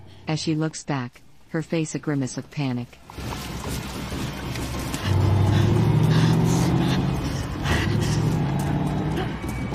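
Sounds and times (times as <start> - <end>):
speech: 0.3 - 3.9
truck driving slowly along a track beside a cornfield: 3.1 - 9.7.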